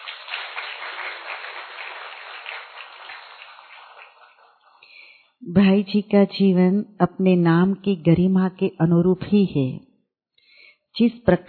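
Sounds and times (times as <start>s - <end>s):
crowd applauding: 0.0s - 5.0s
speech: 5.5s - 9.9s, 11.0s - 11.4s.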